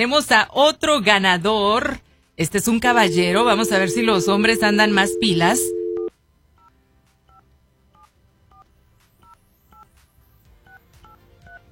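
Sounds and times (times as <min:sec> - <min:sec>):
speech: 0:00.0 - 0:05.8
telephone number dialed on a touch-tone keypad: 0:02.8 - 0:06.1.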